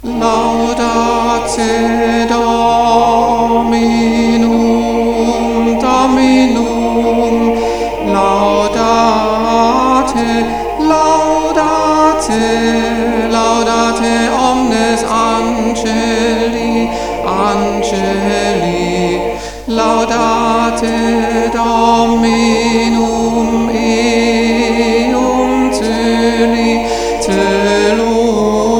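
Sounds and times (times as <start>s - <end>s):
tenor singing at St Martin Ehrenstein: 0.0s - 28.7s.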